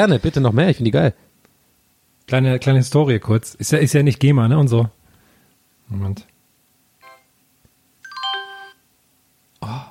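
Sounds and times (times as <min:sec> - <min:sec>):
speech: 0:00.0 - 0:01.3, 0:02.3 - 0:05.0, 0:05.9 - 0:06.3
Windows operating system notification chime: 0:08.1 - 0:08.8.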